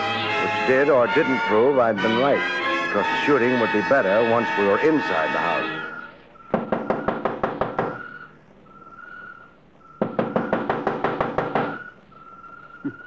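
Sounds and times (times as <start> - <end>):
speech: 0.7 - 5.8
rapid sharp knocking on the door of a house: 6.5 - 8.0, 10.0 - 11.8
faint steady whistle-like tone: 7.9 - 10.6, 11.7 - 13.0.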